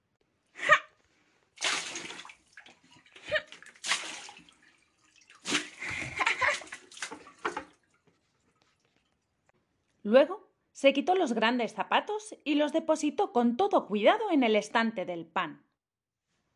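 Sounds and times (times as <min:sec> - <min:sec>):
hot water from a saucepan splashing across a kitchen floor: 0:01.5 - 0:09.4
speech: 0:10.1 - 0:15.7.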